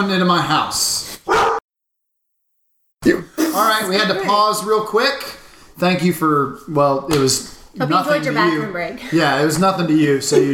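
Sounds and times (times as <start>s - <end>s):
speech: 0.0s - 0.8s, 3.6s - 10.5s
dog barking: 1.3s - 1.6s.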